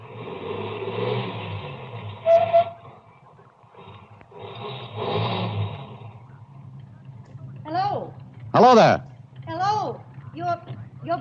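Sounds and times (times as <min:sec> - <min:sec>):
car engine rumbling as car turns around: 0:00.0 - 0:11.1
speech: 0:08.6 - 0:09.1.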